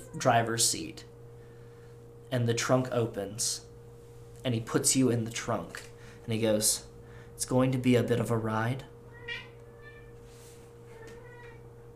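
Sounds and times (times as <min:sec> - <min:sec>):
steady low mechanical hum: 0:00.0 - 0:11.9
speech: 0:00.2 - 0:01.1, 0:02.3 - 0:03.7, 0:04.4 - 0:09.4
cat meowing down an alleyway: 0:09.1 - 0:10.2, 0:10.9 - 0:11.8.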